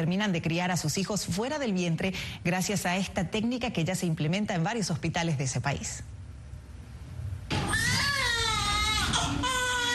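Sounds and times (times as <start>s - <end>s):
speech: 0.0s - 6.2s
low noise: 0.0s - 9.9s
newborn baby crying: 7.5s - 9.9s.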